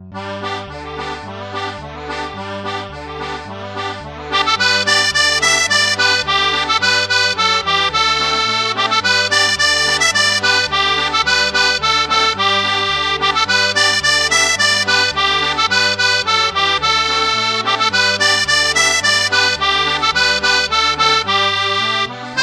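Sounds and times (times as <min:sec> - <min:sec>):
melodica: 0:00.0 - 0:22.4.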